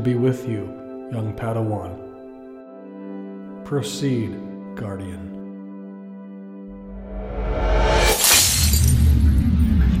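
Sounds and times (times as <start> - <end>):
speech: 0.0 - 2.1, 3.6 - 5.4
crystal pillar shattering: 8.0 - 9.4
scattered tinkling fragments: 8.2 - 9.1.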